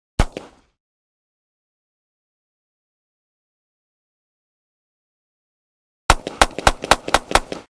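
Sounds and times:
.22 pistol blasts in rapid fire: 0.2s - 0.7s, 6.1s - 7.7s.

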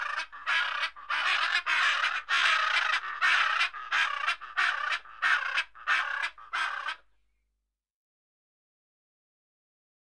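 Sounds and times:
macaw squawking: 0.0s - 7.0s.

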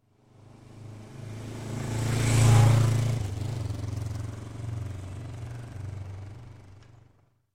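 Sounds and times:
400cc motorcycle passing by slowly: 0.1s - 7.3s.

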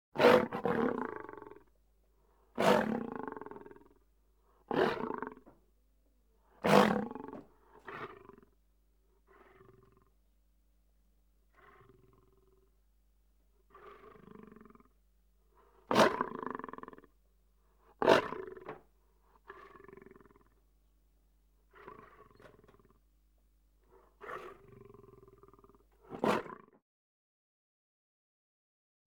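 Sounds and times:
lion growling: 0.2s - 1.7s, 2.6s - 4.0s, 4.7s - 5.5s, 6.6s - 8.6s, 9.2s - 10.2s, 11.5s - 12.7s, 13.7s - 15.0s, 15.9s - 17.1s, 19.4s - 20.6s, 21.7s - 23.0s, 24.0s - 26.8s.

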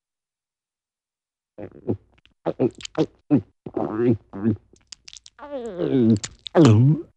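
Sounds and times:
funny cartoon gulps: 1.6s - 7.1s.

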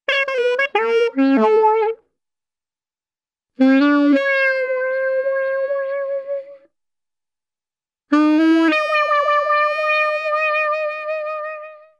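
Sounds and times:
alto sax playing short upbeat and sad cartoon melodies: 0.0s - 2.0s, 3.6s - 6.7s, 8.1s - 11.9s.

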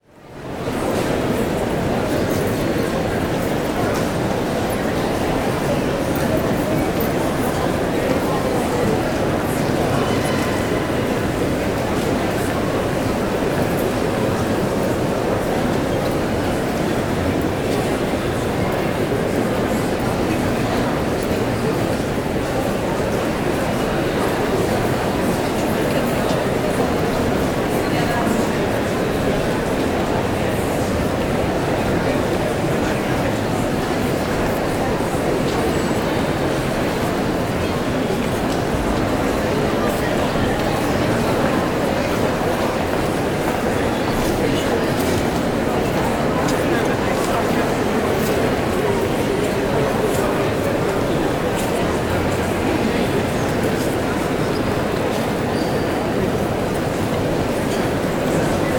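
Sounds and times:
busy open mall crowd walla: 0.0s - 58.7s.

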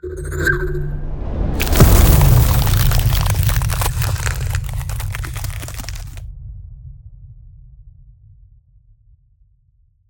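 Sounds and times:
ice lance spell impact: 1.6s - 6.2s.

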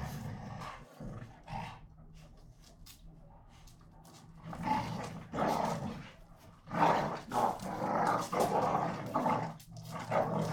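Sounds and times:
two pit bulls snarling and growling while fighting: 0.0s - 2.1s, 4.1s - 10.5s.

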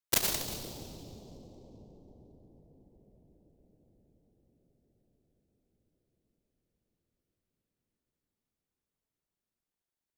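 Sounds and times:
damped cave impulse response: 0.0s - 1.5s.

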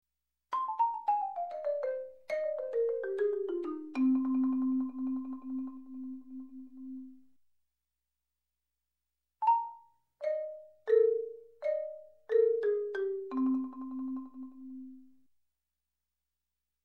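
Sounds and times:
marimba percussion music: 0.6s - 7.1s, 9.4s - 15.0s.

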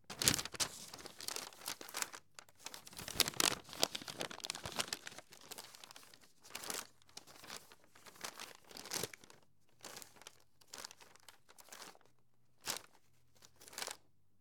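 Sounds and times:
paper airplane being folded: 0.0s - 9.4s.

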